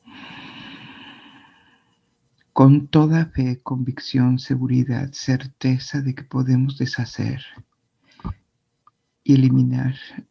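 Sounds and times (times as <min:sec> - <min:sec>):
deep breath drawn in through the mouth during breathing exercise: 0:00.0 - 0:01.8
speech: 0:02.6 - 0:08.4, 0:09.3 - 0:10.2.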